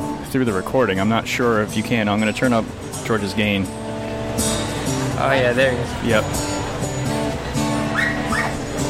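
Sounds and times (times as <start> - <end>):
murmur of noise: 0.0 - 8.8
speech: 0.3 - 3.8, 5.2 - 6.6
dog whimpering: 7.9 - 8.6
dog yipping: 7.9 - 8.7.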